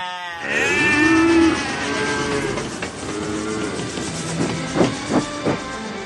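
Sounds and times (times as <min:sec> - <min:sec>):
crowd of train passengers imitating cattle mooing: 0:00.3 - 0:04.1
steady rumbling background: 0:00.5 - 0:06.0.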